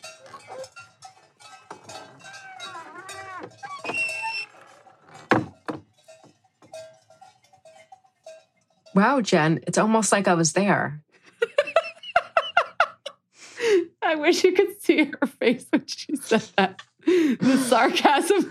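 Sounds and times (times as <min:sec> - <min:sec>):
cow bells clanking in an alpine meadow: 0:00.0 - 0:10.0
speech: 0:09.0 - 0:11.0, 0:14.2 - 0:18.4
laughter: 0:11.3 - 0:13.8, 0:16.1 - 0:18.4.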